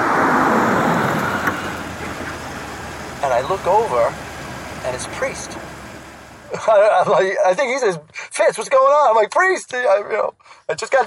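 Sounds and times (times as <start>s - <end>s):
broadband road noise: 0.0s - 6.9s
car engine rumbling: 0.0s - 6.9s
speech: 3.4s - 4.2s, 4.8s - 5.8s, 6.5s - 11.0s.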